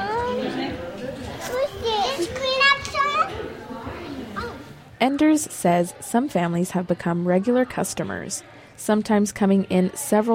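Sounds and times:
toddlers and preschoolers chattering and squealing in an indoor soft play area: 0.0s - 4.9s
busy indoor hubbub in a children's soft play area: 0.0s - 10.3s
speech: 5.0s - 10.3s.

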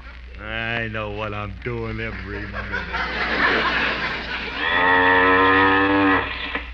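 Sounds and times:
speech: 0.8s - 5.7s
laughter: 2.0s - 4.7s
cow mooing: 4.6s - 6.5s.

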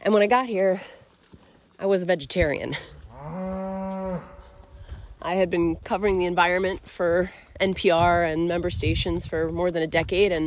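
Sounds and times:
speech: 0.0s - 1.0s, 1.8s - 3.4s, 5.2s - 10.4s
cow mooing in a valley in north central Washington: 3.1s - 4.6s.

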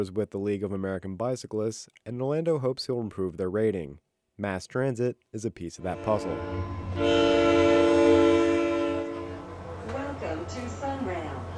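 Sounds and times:
speech: 0.0s - 8.4s
commuter train horn blast: 5.8s - 9.6s
commuter train rumble: 6.0s - 11.5s.

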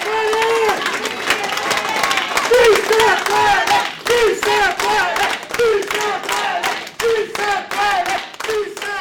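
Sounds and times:
loud continuous hand clapping: 0.0s - 8.9s
large crowd chanting a slogan in unison: 1.9s - 8.9s.

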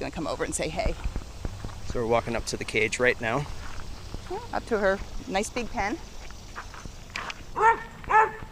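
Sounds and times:
speech: 0.0s - 1.2s, 1.9s - 3.6s, 4.3s - 6.1s
white German Shepherd mix dog giving alert barks in a shelter pen: 7.6s - 8.5s.

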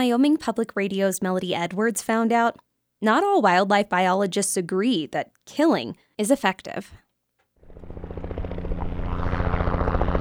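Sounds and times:
speech: 0.0s - 7.0s
descending helicopter rotor thumping: 7.6s - 10.1s
helicopter deep engine drone: 7.6s - 10.1s.

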